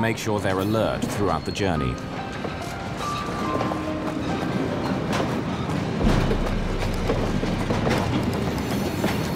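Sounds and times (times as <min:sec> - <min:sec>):
speech: 0:00.0 - 0:02.4
freight train rumbling past a platform: 0:00.6 - 0:09.3
freight train wheels clattering over the rails: 0:00.9 - 0:09.3
deep low drone: 0:06.0 - 0:08.8.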